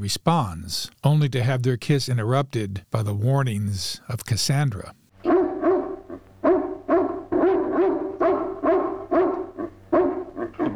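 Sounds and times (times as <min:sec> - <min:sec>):
speech: 0:00.0 - 0:05.0
dog barking behind a closed door: 0:05.2 - 0:10.7.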